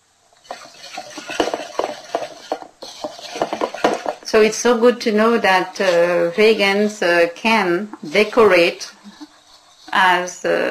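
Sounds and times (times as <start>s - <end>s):
whisk beating soy milk into a mixture in a bowl: 0.5s - 4.2s, 8.0s - 10.6s
speech: 4.3s - 8.9s, 10.0s - 10.6s.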